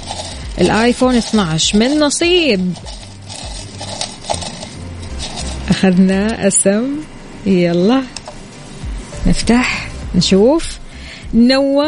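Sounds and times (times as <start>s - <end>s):
paper slips rustling during prize draw: 0.0s - 6.0s
speech: 0.6s - 3.0s, 5.8s - 8.2s, 9.2s - 10.7s, 11.3s - 11.8s.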